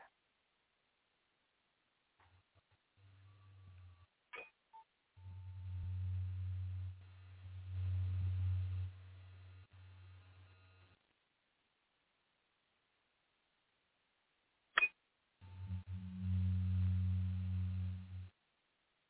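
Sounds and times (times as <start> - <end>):
low humming tone: 2.2 - 11.0, 15.4 - 18.4.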